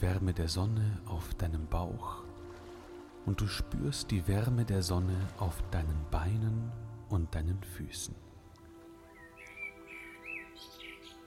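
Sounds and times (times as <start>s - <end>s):
speech: 0.0s - 2.3s, 3.2s - 8.2s
birds chirping softly in distant trees: 8.4s - 11.2s.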